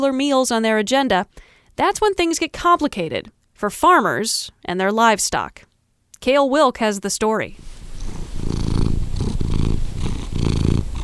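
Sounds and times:
speech: 0.0 - 7.8
cat purring: 7.6 - 11.0.

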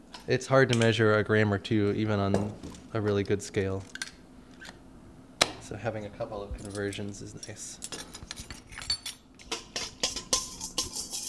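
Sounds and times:
speech: 0.3 - 4.0, 5.7 - 8.0
whisk stirring a yeast mixture clinking against the bowl: 9.4 - 11.2.

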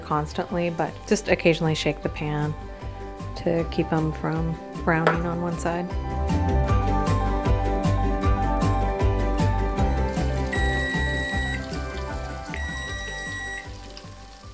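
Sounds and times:
rhythmic music: 0.0 - 14.5
speech: 0.1 - 2.7, 3.4 - 6.6
kitchen timer ringing: 10.6 - 11.6, 12.5 - 13.6.

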